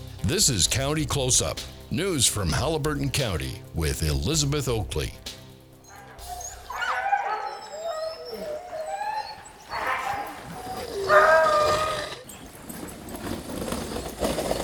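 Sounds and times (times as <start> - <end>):
speech: 0.3 - 5.4
Siberian huskies barking, yipping and whining excitedly before sled race: 5.8 - 14.5.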